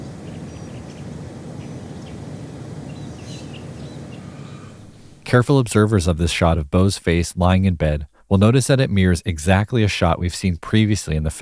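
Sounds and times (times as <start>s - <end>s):
faint bird chirps in the morning: 0.0s - 5.2s
loud low rumble: 0.0s - 10.2s
speech: 5.3s - 11.4s.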